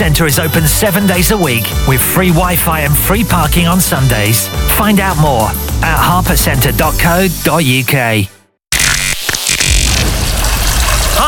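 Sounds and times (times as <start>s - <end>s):
speech: 0.0s - 8.4s
water pouring down from the ceiling: 9.4s - 11.2s.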